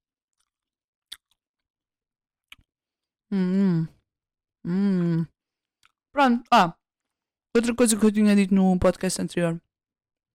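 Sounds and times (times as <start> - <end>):
chewing a strawberry: 0.3 - 1.7
speech: 3.3 - 4.0, 4.6 - 5.3, 6.2 - 6.8, 7.6 - 9.6.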